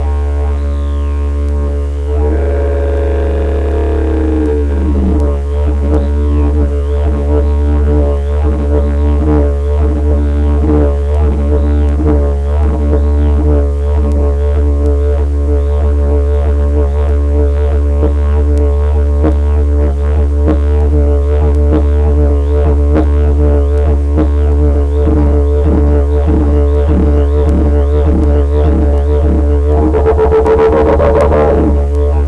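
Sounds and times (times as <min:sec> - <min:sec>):
didgeridoo: 0:00.0 - 0:32.2.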